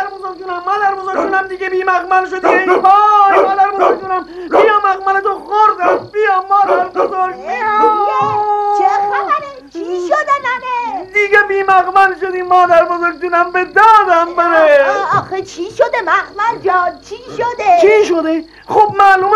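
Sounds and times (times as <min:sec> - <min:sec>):
speech: 0:00.4 - 0:08.5, 0:09.9 - 0:19.3
person imitating a dog barking and whimpering: 0:02.4 - 0:04.8, 0:05.8 - 0:08.9, 0:14.6 - 0:15.2.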